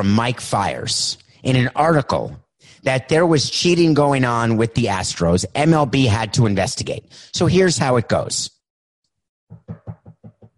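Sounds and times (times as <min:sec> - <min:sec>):
speech: 0:00.0 - 0:08.6
firm knocks on a door: 0:09.5 - 0:10.5.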